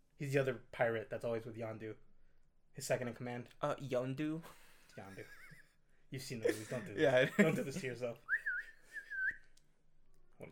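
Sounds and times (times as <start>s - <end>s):
speech: 0.2s - 2.1s, 2.8s - 5.4s, 6.1s - 8.4s, 10.4s - 10.5s
person whistling a sliding note imitating an arrow whistle: 8.3s - 9.5s.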